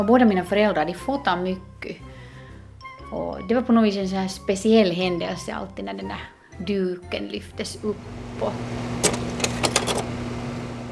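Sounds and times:
speech: 0.0 - 2.1, 3.1 - 9.2
slide projector whirring with steady low hum: 8.7 - 10.3.

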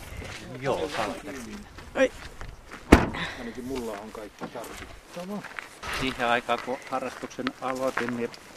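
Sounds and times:
speech: 0.6 - 2.4, 3.0 - 8.5
car tailgate slamming shut: 2.9 - 3.3.

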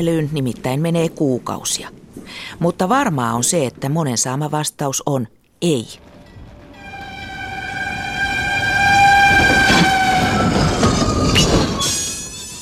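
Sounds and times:
speech: 0.0 - 6.1
train brakes giving off a high metallic squeal: 6.1 - 12.5.

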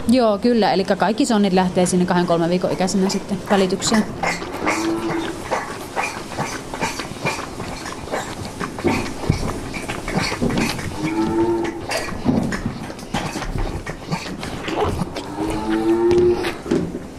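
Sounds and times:
speech: 0.1 - 4.5
clattering, slurping and rustling of calves feeding: 2.6 - 17.1
calves mooing while feeding in a barn: 2.8 - 8.0, 8.8 - 12.6, 13.2 - 16.6.

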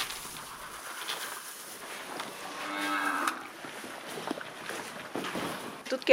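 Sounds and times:
shuffling in barn: 0.0 - 6.1
dairy cow mooing in barn at feeding time: 2.3 - 3.6.

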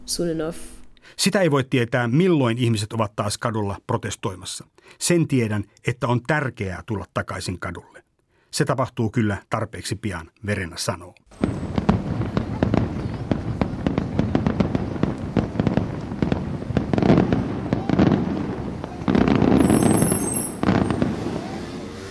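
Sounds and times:
speech: 0.1 - 11.8
fireworks crackling and banging over city rooftops: 11.3 - 22.0
low rumble of city noise: 11.3 - 22.0
faint high whistle: 19.6 - 21.7.

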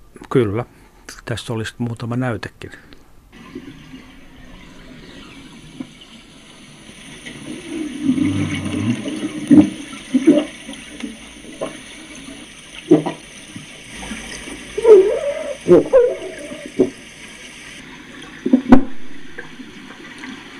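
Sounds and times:
speech: 0.2 - 3.0, 8.2 - 9.1, 15.7 - 16.1
underwater water noise: 3.3 - 20.5
grey seal grunting underwater in surface water of the Åland archipelago: 7.7 - 10.6, 14.0 - 17.0.

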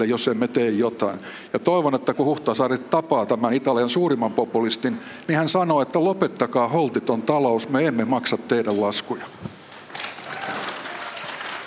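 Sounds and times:
speech: 0.0 - 9.5
crowd applauding at an outdoor debate: 9.7 - 11.6.

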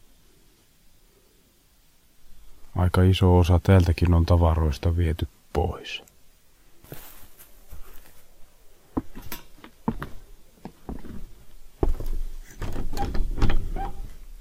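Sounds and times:
speech: 2.8 - 6.1
locked door rattling and rumbling as it is pushed in an old house in a deserted village: 12.5 - 14.2.

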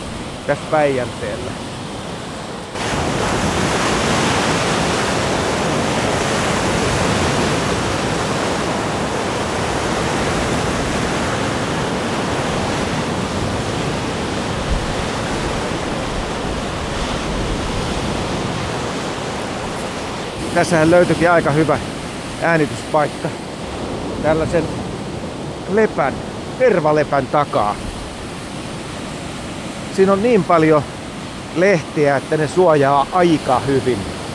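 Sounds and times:
wind noise: 0.0 - 26.6
large waves over a metre high breaking on the shore of Lake Päijänne: 0.0 - 34.3
speech: 0.5 - 1.7, 20.6 - 23.4, 24.2 - 24.8, 25.7 - 27.9, 30.0 - 31.0, 31.6 - 34.1.

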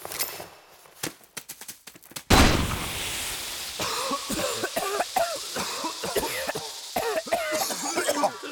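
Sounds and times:
tear gas grenade burst: 2.3 - 3.8
hissing: 2.3 - 8.5
people coughing and retching from tear gas: 3.8 - 8.5.

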